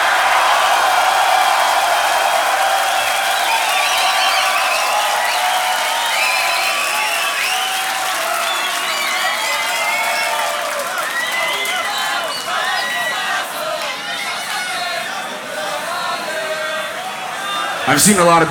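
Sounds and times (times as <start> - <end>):
audience applauding at a beatbox battle: 0.0 - 18.4
audience cheering with whoops and shouts at a beatbox battle: 0.0 - 18.4
speech: 18.0 - 18.4.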